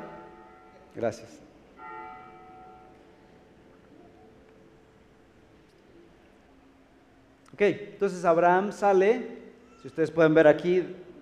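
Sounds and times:
single bell strike ringing: 0.0 - 1.0, 1.8 - 3.3
speech: 1.0 - 1.5, 7.6 - 11.1.

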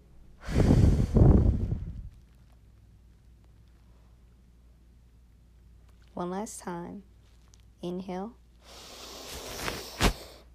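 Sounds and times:
breathy exhale during a guided breathing exercise: 0.4 - 1.9, 8.6 - 10.5
speech: 6.2 - 7.1, 7.8 - 8.9.

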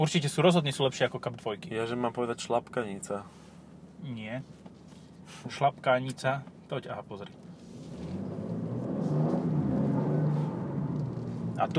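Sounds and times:
speech: 0.0 - 3.4, 4.0 - 4.6, 5.3 - 7.4, 11.6 - 11.7
N Line car engine humming and accelerating while driving past: 7.5 - 11.7.

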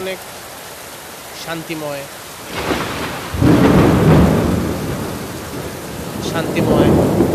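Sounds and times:
steady rainfall: 0.0 - 7.3
speech: 0.1 - 0.4, 1.4 - 2.7, 6.3 - 7.3
deep rolling thunder rumble: 2.4 - 7.3.

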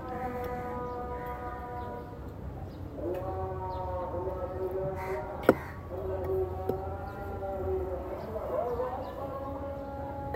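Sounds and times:
drawn-out raspy calls in Zanzibar: 0.0 - 2.1, 3.1 - 6.1
voices in Zanzibar: 0.0 - 10.3.

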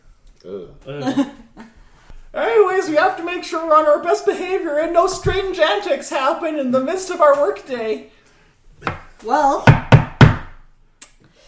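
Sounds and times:
speech: 0.4 - 1.4, 2.8 - 8.2, 8.8 - 9.8
knocks on a wooden surface: 8.8 - 10.6.

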